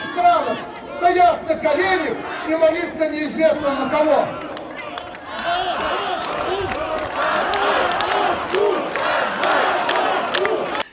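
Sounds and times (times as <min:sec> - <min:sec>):
large crowd chanting slogans after leaders: 0:00.0 - 0:10.8
speech: 0:01.4 - 0:04.4.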